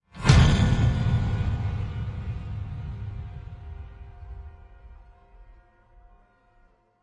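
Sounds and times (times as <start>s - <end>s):
dirty bomb explosion: 0.2s - 5.1s.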